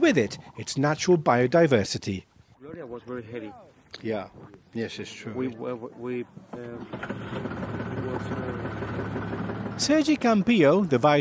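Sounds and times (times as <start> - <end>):
speech: 0.0 - 2.3, 2.9 - 11.1
boat engine idling on the Albufeira lagoon in Spain: 5.1 - 11.1.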